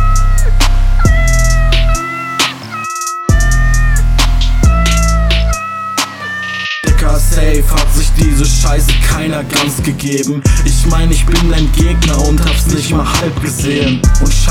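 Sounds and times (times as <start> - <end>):
thumping bass beat: 0.0 - 14.4
sharp percussive hits: 0.6 - 14.3
loud repeated cat meows arranged rhythmically: 1.9 - 4.8
speech: 8.6 - 14.4.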